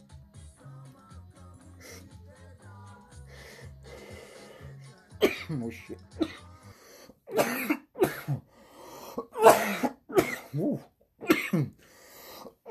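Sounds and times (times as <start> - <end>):
harsh hacking coughs after smoking from a bowl: 5.2 - 6.5, 7.3 - 8.5, 9.2 - 11.8
speech: 5.5 - 6.5.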